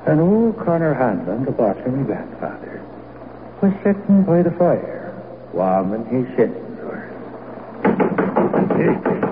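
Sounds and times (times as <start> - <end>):
speech: 0.1 - 2.9, 3.6 - 6.6, 8.8 - 9.2
rapping knocks on a window: 7.8 - 9.3.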